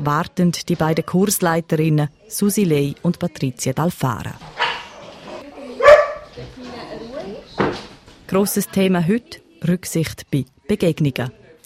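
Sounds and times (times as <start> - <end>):
speech: 0.0 - 4.6, 8.3 - 11.6
people talking quietly inside a wooden hut: 0.0 - 11.6
dog barking inside a wooden hut: 4.6 - 5.1, 5.8 - 6.4.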